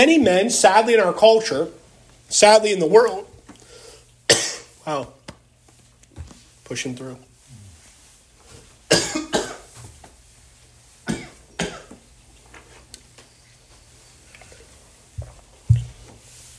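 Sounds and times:
speech: 0.0s - 3.3s, 4.4s - 5.2s, 6.7s - 7.3s
person coughing in sharp bursts: 4.3s - 4.7s, 8.9s - 9.7s, 11.1s - 12.0s.

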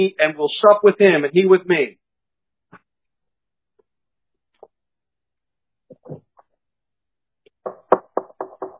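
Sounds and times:
speech: 0.0s - 2.0s
knocking on a door: 7.6s - 8.7s.

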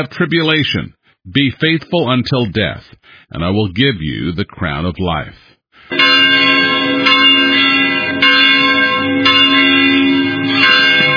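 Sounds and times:
speech: 0.0s - 7.8s
church bells ringing: 5.9s - 11.1s.

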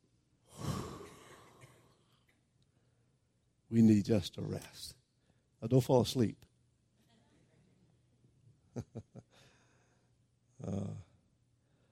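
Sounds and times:
deep breath: 0.4s - 1.7s, 9.3s - 10.2s, 11.6s - 11.9s
speech: 3.7s - 5.0s, 5.6s - 6.5s, 10.6s - 11.0s.

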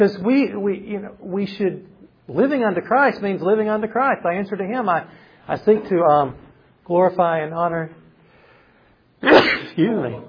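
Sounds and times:
speech: 0.0s - 8.0s, 9.2s - 10.2s
loud amplified sneeze: 9.2s - 9.8s.

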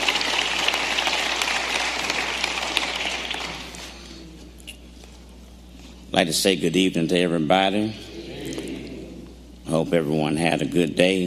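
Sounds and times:
audience applause: 0.0s - 3.8s
speech: 6.2s - 8.1s, 9.7s - 11.2s.

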